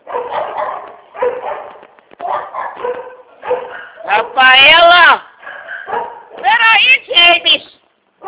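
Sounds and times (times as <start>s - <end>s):
dog barking excitedly: 0.0s - 7.0s.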